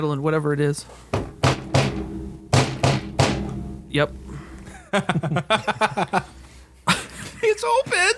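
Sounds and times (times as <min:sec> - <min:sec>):
speech: 0:00.0 - 0:01.3, 0:03.9 - 0:04.2, 0:04.9 - 0:06.3, 0:07.6 - 0:08.1
heavy banging knocks on a closed door: 0:01.1 - 0:03.9
laughter: 0:04.4 - 0:07.8.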